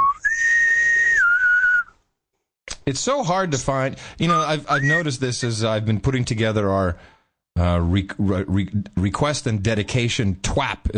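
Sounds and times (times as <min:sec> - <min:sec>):
bosun's whistle piped: 0:00.0 - 0:02.0, 0:04.3 - 0:05.1
speech: 0:02.9 - 0:10.9.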